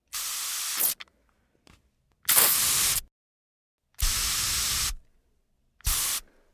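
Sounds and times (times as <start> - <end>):
spray: 0.1 - 1.0, 2.3 - 3.1, 4.0 - 5.0, 5.9 - 6.3.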